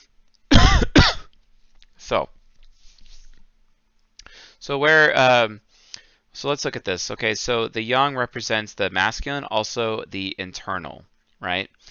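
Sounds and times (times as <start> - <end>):
person coughing: 0.5 - 1.3
speech: 2.1 - 2.4, 4.7 - 5.6, 6.4 - 11.8.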